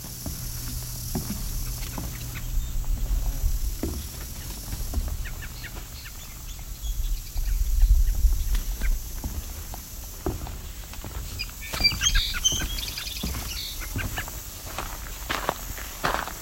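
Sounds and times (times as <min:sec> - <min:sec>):
crunch of footsteps: 0:00.0 - 0:16.3
cedar waxwing calls: 0:01.3 - 0:09.1, 0:11.3 - 0:14.4.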